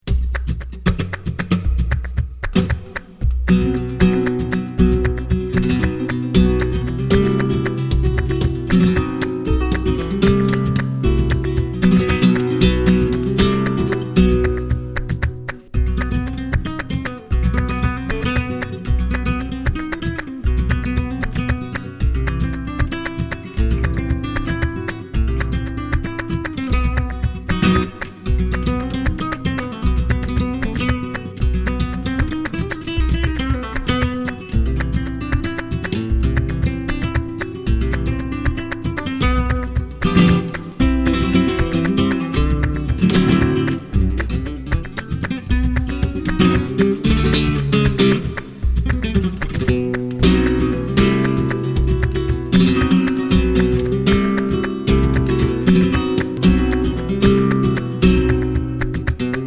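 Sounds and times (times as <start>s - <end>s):
Buleria flamenco guitar: 0.0s - 59.4s.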